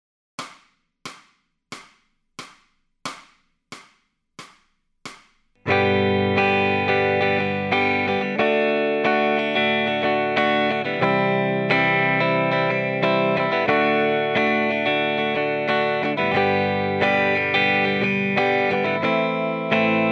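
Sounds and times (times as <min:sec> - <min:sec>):
electric guitar lead backing track: 0:05.6 - 0:20.1.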